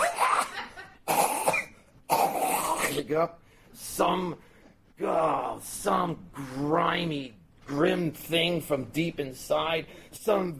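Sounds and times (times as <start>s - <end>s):
people coughing on board a crowded vehicle: 0.0s - 3.1s
speech: 3.0s - 10.5s.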